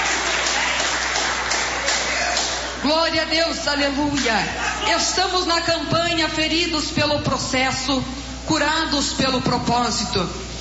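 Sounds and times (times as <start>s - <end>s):
church congregation applauding during a service: 0.0s - 2.8s
speech: 2.8s - 10.4s.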